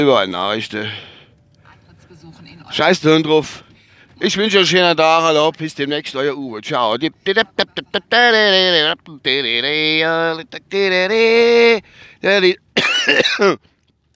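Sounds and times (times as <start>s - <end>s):
speech: 0.0s - 1.1s, 2.2s - 3.6s, 4.2s - 13.7s
person coughing in short sharp coughs and strained hacking fits: 12.8s - 13.6s.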